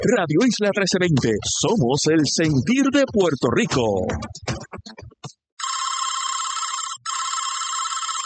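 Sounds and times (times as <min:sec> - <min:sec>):
speech: 0:00.0 - 0:04.6
telephone ringing in long electronic bursts: 0:05.6 - 0:08.2.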